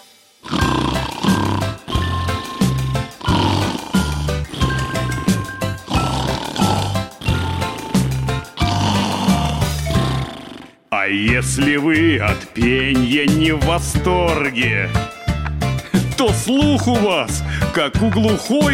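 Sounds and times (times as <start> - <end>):
bear snoring with grunting rasps: 0.4 - 10.9
speech: 11.1 - 15.1, 16.2 - 18.7.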